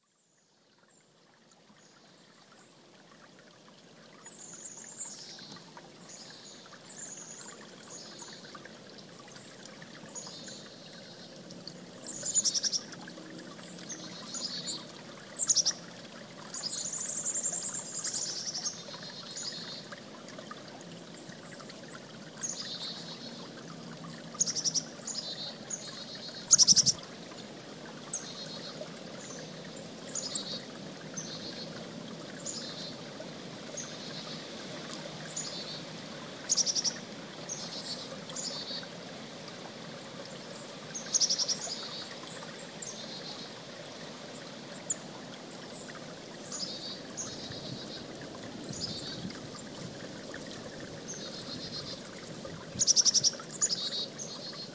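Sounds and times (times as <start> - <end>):
creek flowing: 0.4 - 54.7
chickadee calling: 26.5 - 27.0.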